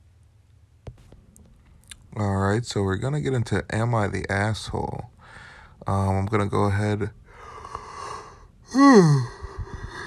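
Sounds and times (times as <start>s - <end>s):
speech: 2.2s - 5.1s, 5.8s - 7.2s, 8.7s - 9.4s
loud yawn: 7.4s - 10.0s.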